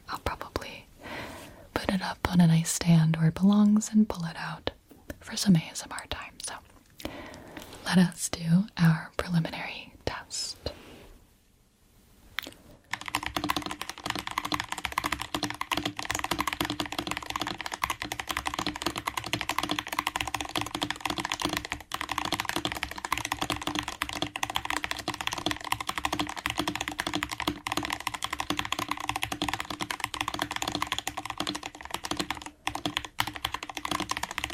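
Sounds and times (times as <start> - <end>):
speech: 1.9 - 4.7, 5.3 - 6.2, 7.9 - 10.5
rapid typing on a computer keyboard: 12.9 - 34.5.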